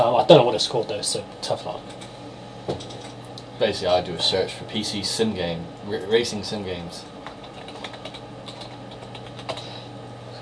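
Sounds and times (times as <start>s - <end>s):
speech: 0.0s - 2.1s, 2.7s - 3.0s, 3.6s - 7.2s
low steady hum: 0.0s - 10.4s
typing on a computer keyboard: 7.2s - 9.6s.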